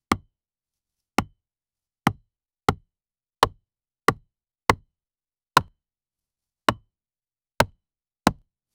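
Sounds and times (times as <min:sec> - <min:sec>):
wood axe chopping into oak: 0:02.1 - 0:02.8, 0:03.4 - 0:04.8, 0:07.6 - 0:08.4.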